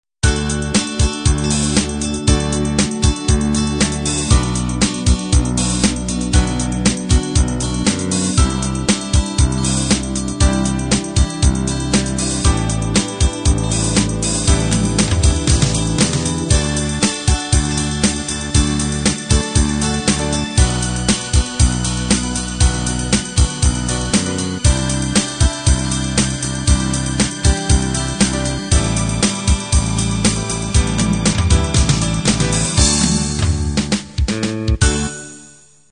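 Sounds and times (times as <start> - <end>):
pop beat: 0.2 - 35.1.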